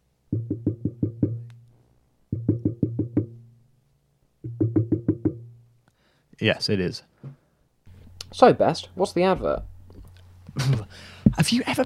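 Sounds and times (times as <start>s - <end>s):
rapid resonant knocking on a door: 0.3s - 1.4s, 2.4s - 3.4s, 4.5s - 5.5s
speech: 6.4s - 7.1s, 8.4s - 9.7s, 10.6s - 11.8s.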